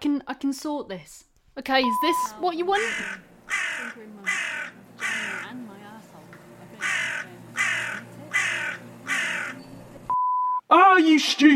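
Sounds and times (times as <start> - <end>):
speech: 0.1 - 5.8, 10.7 - 11.5
crow kept in a room cawing: 2.7 - 5.6, 6.8 - 9.6.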